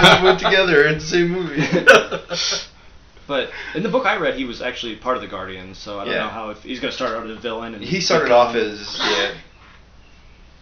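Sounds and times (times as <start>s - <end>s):
laughter: 0.0s - 2.7s
speech: 0.0s - 2.7s, 3.3s - 9.5s
faint room hiss: 0.0s - 10.6s
person coughing: 9.0s - 9.4s.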